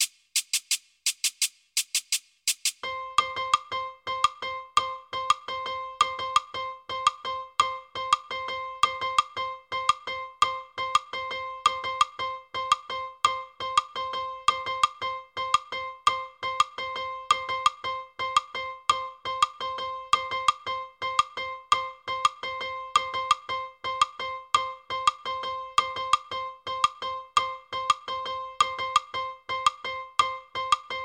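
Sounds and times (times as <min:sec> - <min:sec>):
fast two-three clave rhythm: 0:00.0 - 0:31.0.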